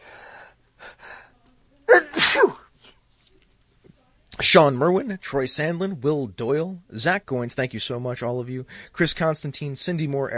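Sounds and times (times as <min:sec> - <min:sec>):
quick breathy inhales: 0:00.0 - 0:01.3
person sneezing: 0:01.9 - 0:03.0
speech: 0:04.4 - 0:10.3.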